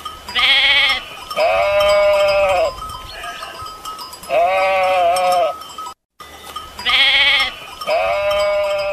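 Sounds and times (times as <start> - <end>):
herd of goats bleating on an old drovers' route in Catalonia: 0.4 - 3.6, 4.3 - 5.6, 6.8 - 8.9.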